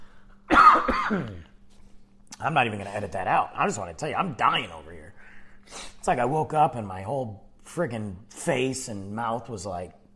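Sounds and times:
person coughing harshly: 0:00.5 - 0:01.5
speech: 0:01.1 - 0:01.5, 0:02.4 - 0:10.0.

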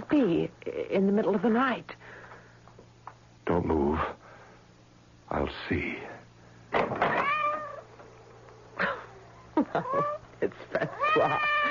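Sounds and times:
faint hum: 0:00.0 - 0:11.6
speech: 0:00.1 - 0:02.0, 0:03.5 - 0:04.2, 0:05.3 - 0:06.2, 0:09.6 - 0:11.6
cat meowing at the front door: 0:07.1 - 0:07.8, 0:10.9 - 0:11.6.

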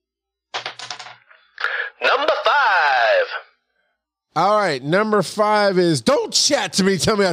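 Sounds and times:
dice clattering across a hard surface: 0:00.6 - 0:01.2
speech: 0:02.0 - 0:03.5, 0:04.4 - 0:07.3.

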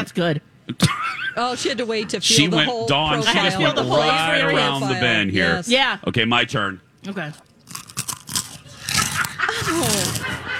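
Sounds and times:
speech: 0:00.0 - 0:07.8
person biting and chewing a chip: 0:07.4 - 0:10.4.

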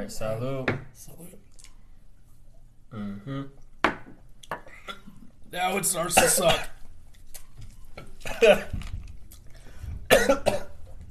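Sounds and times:
speech: 0:00.0 - 0:01.4, 0:02.9 - 0:03.6, 0:05.5 - 0:06.7, 0:08.2 - 0:08.9, 0:10.1 - 0:10.7
person coughing after taking a liquor shot: 0:06.2 - 0:06.8, 0:08.2 - 0:08.7, 0:10.1 - 0:10.8.

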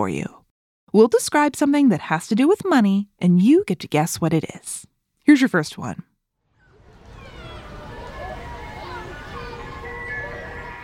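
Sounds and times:
speech: 0:00.0 - 0:06.1
street noise: 0:06.6 - 0:10.8
tinny ice cream truck jingle: 0:07.0 - 0:10.8.

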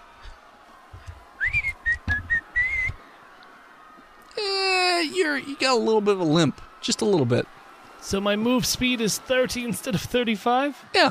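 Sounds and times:
person whistling to call a dog: 0:01.4 - 0:03.0
speech: 0:05.2 - 0:11.0.

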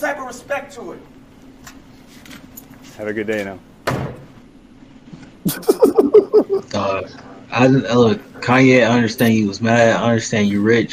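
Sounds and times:
speech: 0:00.0 - 0:01.8, 0:03.0 - 0:03.7, 0:05.6 - 0:10.9
heavy door slamming shut: 0:03.8 - 0:04.4
loud laughter: 0:05.4 - 0:06.8.

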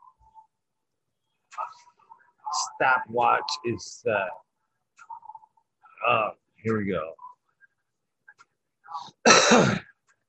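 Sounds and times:
speech: 0:02.8 - 0:04.4, 0:06.0 - 0:07.2, 0:08.9 - 0:09.9
throat clearing: 0:09.2 - 0:10.0.

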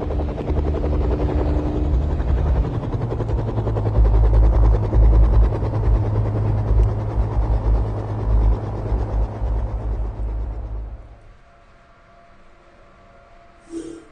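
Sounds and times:
helicopter rotor thrumming with deep engine drone: 0:00.0 - 0:11.9.

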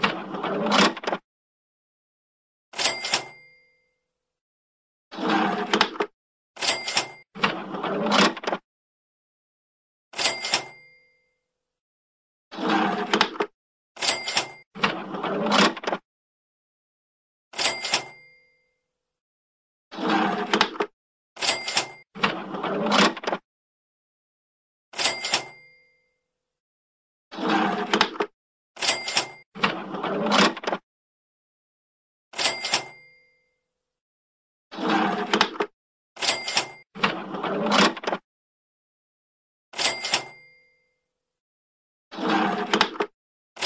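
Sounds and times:
money drawer opening and shutting: 0:00.0 - 0:01.2, 0:02.7 - 0:03.4, 0:05.1 - 0:08.6, 0:10.1 - 0:10.8, 0:12.5 - 0:16.0, 0:17.5 - 0:18.3, 0:19.9 - 0:23.4, 0:24.9 - 0:25.6, 0:27.4 - 0:30.8, 0:32.3 - 0:33.0, 0:34.8 - 0:38.2, 0:39.7 - 0:40.5, 0:42.2 - 0:43.6.

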